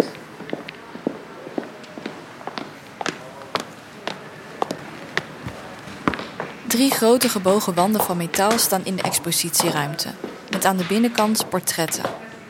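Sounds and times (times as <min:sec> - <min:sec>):
footsteps on a hard floor in a large indoor space: 0:04.6 - 0:12.2
speech: 0:06.7 - 0:12.2.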